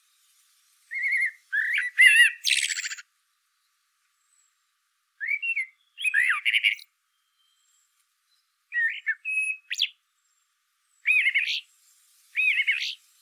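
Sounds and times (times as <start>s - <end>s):
Eurasian blackbird Turdus merula singing: 0.9s - 3.1s, 5.2s - 10.4s, 11.0s - 11.7s, 12.4s - 13.0s.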